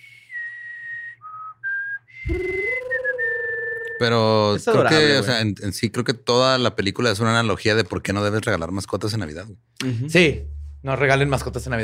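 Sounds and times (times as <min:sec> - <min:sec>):
whistled melody of a creature's song: 0:00.0 - 0:04.2
speech: 0:02.2 - 0:02.6, 0:04.0 - 0:11.8.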